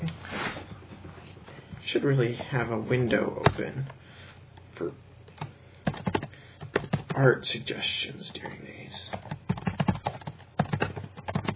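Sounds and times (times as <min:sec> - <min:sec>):
speech: 0:01.9 - 0:04.0, 0:04.8 - 0:05.0, 0:07.2 - 0:09.1
rapid typing on a computer keyboard: 0:05.4 - 0:07.2, 0:09.1 - 0:11.5.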